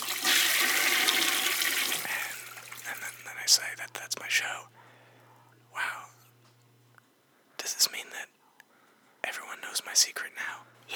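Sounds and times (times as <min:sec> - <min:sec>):
toilet flushing: 0:00.0 - 0:03.2
speech: 0:03.5 - 0:04.8.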